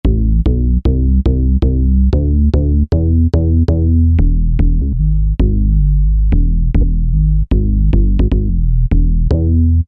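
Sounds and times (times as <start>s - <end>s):
pure bass tone: 0.0s - 9.8s.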